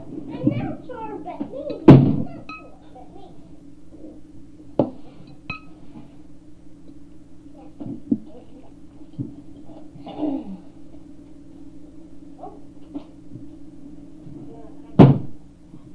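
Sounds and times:
low room hum: 0.0s - 15.9s
wooden chair thunks and knocks while being moved and carried: 15.0s - 15.3s.

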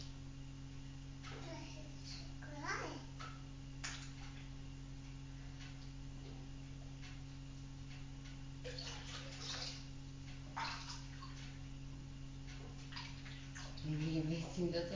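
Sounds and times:
steady low hum: 0.0s - 14.9s
child babbling in a bathtub: 1.4s - 3.1s
warm water sloshing and splashing in a bathtub: 2.7s - 4.6s, 8.6s - 11.7s, 12.4s - 14.9s
speech: 14.6s - 14.9s.

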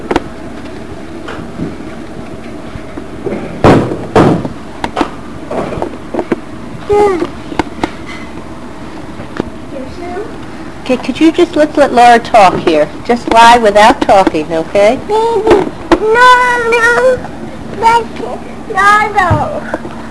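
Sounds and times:
door shutting in a room with sharp thuds: 3.3s - 5.8s
speech: 6.9s - 7.4s, 10.9s - 19.8s.

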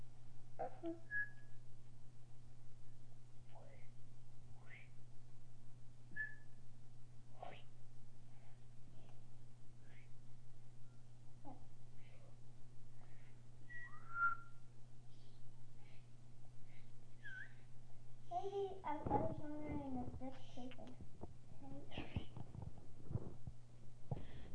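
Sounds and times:
steady low hum: 0.0s - 24.5s
several people attempting to whistle: 13.7s - 14.5s.

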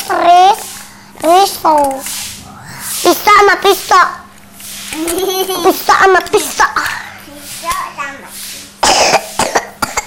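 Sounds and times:
speech: 0.1s - 0.6s, 1.2s - 2.2s, 3.1s - 4.2s, 4.9s - 7.0s
person coughing in a kitchen: 8.8s - 10.0s.

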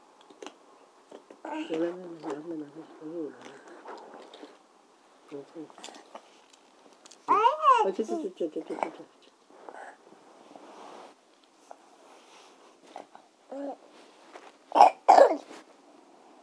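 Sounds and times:
soft rustling: 1.3s - 14.7s, 15.4s - 16.4s
child coughing with a wet chesty rasp from phlegm: 14.8s - 15.5s.

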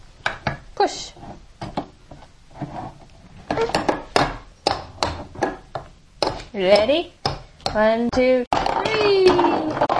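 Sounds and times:
speech: 0.8s - 1.4s, 6.6s - 9.9s
toy hammer banging on a ball: 3.5s - 9.9s.

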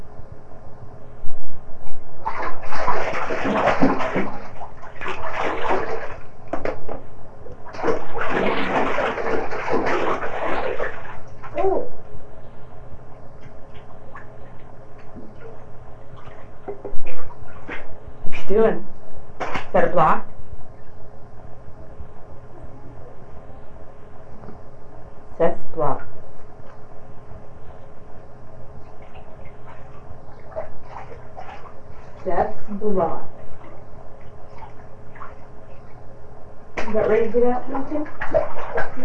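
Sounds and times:
water splashing in a bathtub: 1.9s - 12.0s, 13.4s - 18.5s, 19.4s - 20.2s, 28.8s - 36.1s, 36.7s - 39.0s.

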